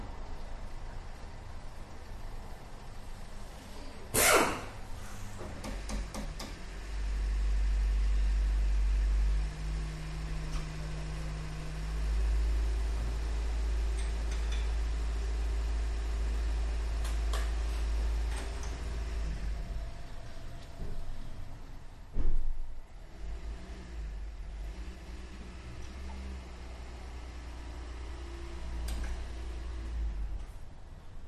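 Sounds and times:
air ratchet burst in an auto repair shop: 4.1s - 4.7s
car engine idling and revving in an auto repair shop: 5.0s - 22.1s, 22.7s - 31.2s.

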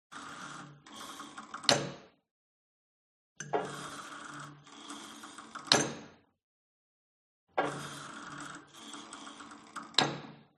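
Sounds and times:
old gym cable machine pulled and dropped hard: 1.4s - 2.1s, 3.4s - 6.2s, 7.6s - 8.1s, 8.7s - 10.4s.

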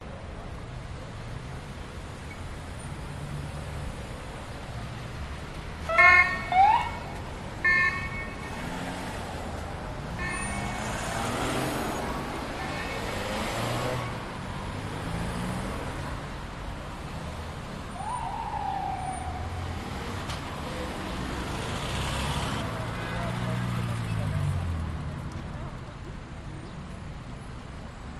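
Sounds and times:
cars passing by in Budapest Hungary: 0.0s - 28.1s
police sirens in Budapest Hungary: 5.8s - 8.7s, 10.2s - 11.6s, 17.7s - 21.0s.

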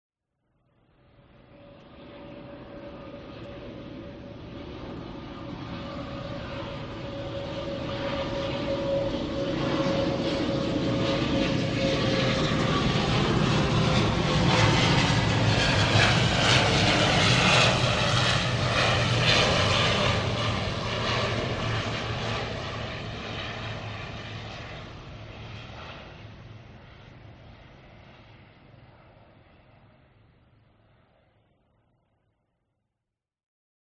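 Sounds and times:
military Fokker 50 propeller aircraft flying past: 0.8s - 32.5s.

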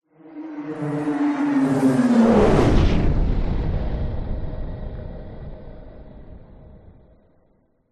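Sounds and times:
science fiction pass-by whoosh: 1.9s - 7.2s
explosion: 2.3s - 6.6s.

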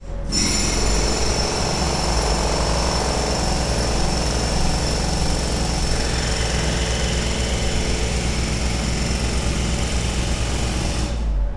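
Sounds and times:
industrial jackhammer operating: 0.3s - 11.4s.

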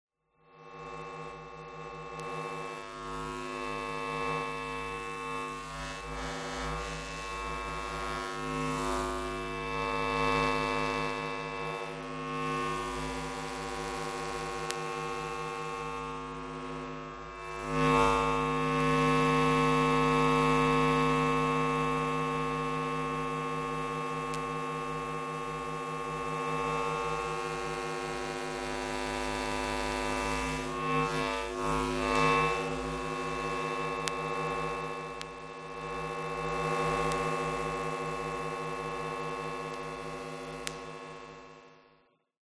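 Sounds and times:
electromagnetic power station power supply: 0.4s - 42.2s.

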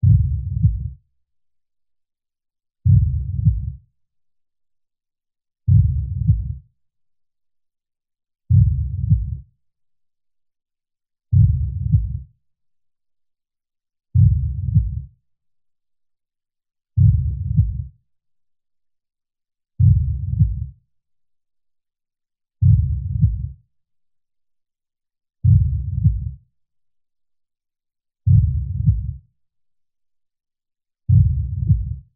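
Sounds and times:
deep slow heartbeat: 0.0s - 1.0s, 2.9s - 3.8s, 5.7s - 6.6s, 8.5s - 9.4s, 11.4s - 12.3s, 14.2s - 15.1s, 17.0s - 17.9s, 19.8s - 20.8s, 22.6s - 23.6s, 25.4s - 26.4s, 28.3s - 29.2s, 31.1s - 32.1s.

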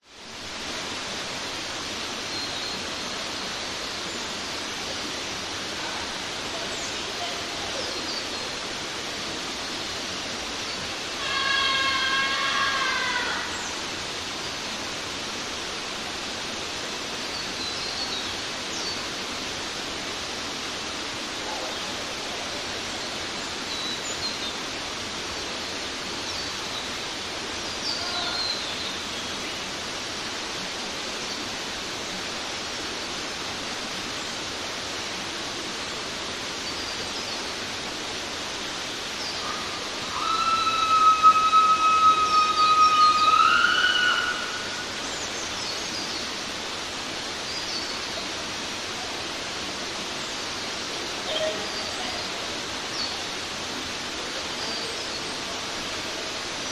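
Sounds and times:
forest creek water flowing in Queensland Australia: 0.0s - 56.7s
distant young adults screaming while swimming in Queensland Australia: 11.2s - 13.7s, 39.4s - 45.0s.

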